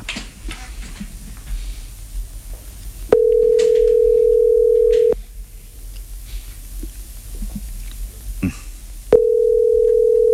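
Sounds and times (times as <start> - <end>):
ringback tone on an outgoing telephone call: 3.2 - 5.2, 9.2 - 10.3.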